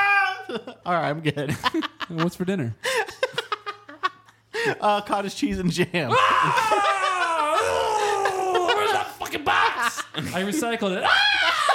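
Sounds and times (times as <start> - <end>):
man screaming: 0.0 - 0.6, 6.1 - 11.7
speech: 0.5 - 2.9, 4.6 - 7.0, 9.9 - 11.4
laughter: 1.4 - 4.4, 6.1 - 11.7.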